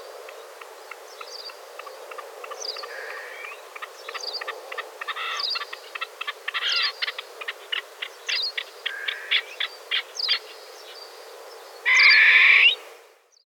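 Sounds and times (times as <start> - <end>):
grey partridge calls: 2.8 - 10.0, 11.9 - 12.8.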